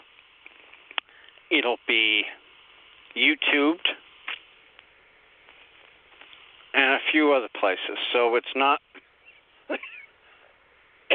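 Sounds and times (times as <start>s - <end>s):
speech: 1.5s - 2.4s, 3.1s - 4.0s, 6.8s - 8.8s, 9.7s - 9.9s
person coughing dry coughs: 9.7s - 10.1s.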